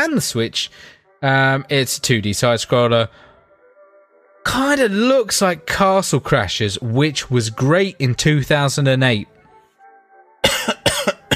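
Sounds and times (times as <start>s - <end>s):
speech: 0.0s - 3.3s, 4.4s - 9.3s
person coughing sharply and harshly: 10.4s - 11.3s.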